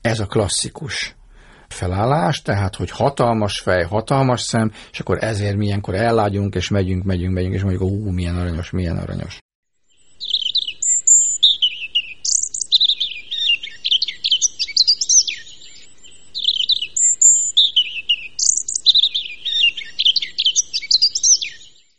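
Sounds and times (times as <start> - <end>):
speech: 0.1 - 9.4
European robin Erithacus rubecula singing: 9.9 - 21.9.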